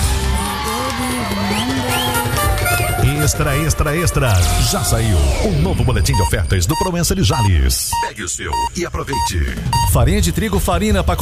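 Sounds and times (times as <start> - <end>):
crowd clapping: 0.0 - 4.9
rising whoops and shouts: 0.0 - 5.3
crowd cheering: 0.0 - 5.7
speech: 3.2 - 11.1.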